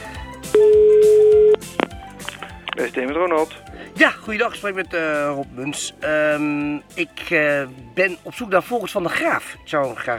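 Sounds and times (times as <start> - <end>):
music: 0.0 - 10.1
telephone beep while dialing: 0.5 - 1.9
speech: 2.8 - 10.1.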